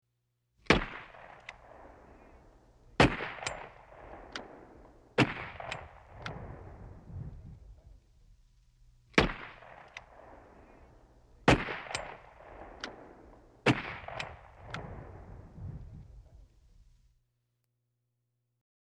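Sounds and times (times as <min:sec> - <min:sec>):
rifle shots: 0:00.6 - 0:07.8, 0:09.1 - 0:15.9.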